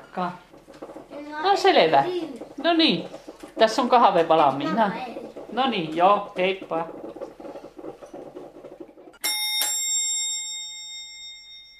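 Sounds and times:
rustling and clatter: 0:00.0 - 0:09.2
speech: 0:00.2 - 0:00.5, 0:01.3 - 0:07.0
doorbell chiming with two bright strikes: 0:09.2 - 0:11.7.

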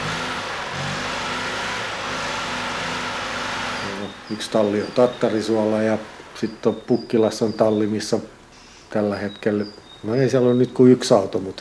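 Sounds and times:
vintage car engine revving: 0:00.0 - 0:08.5
speech: 0:04.3 - 0:11.5.

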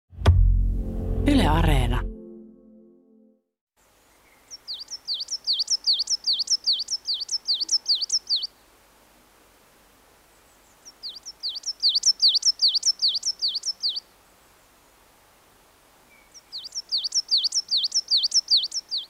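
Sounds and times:
speech: 0:01.2 - 0:02.1
coal tit singing rapid high two-note phrases: 0:04.5 - 0:08.5, 0:10.8 - 0:14.0, 0:16.4 - 0:19.0.

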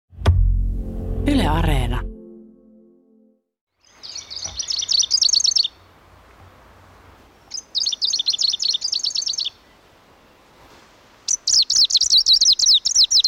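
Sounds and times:
speech: 0:01.2 - 0:02.1
greenish warbler singing high-pitched bursts of jumbled notes: 0:03.8 - 0:05.8, 0:07.5 - 0:09.6, 0:11.3 - 0:13.2.

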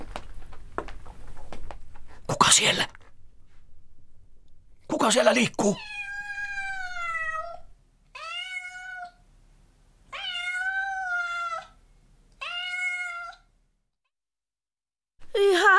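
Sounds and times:
speech: 0:02.5 - 0:03.0, 0:05.0 - 0:05.9
cat meowing: 0:05.8 - 0:09.2, 0:10.1 - 0:11.8, 0:12.4 - 0:13.5.

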